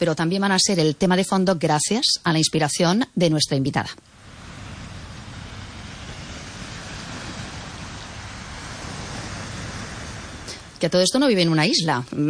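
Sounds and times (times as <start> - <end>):
speech: 0.0 - 4.2, 10.8 - 12.2
sea waves: 3.8 - 12.1.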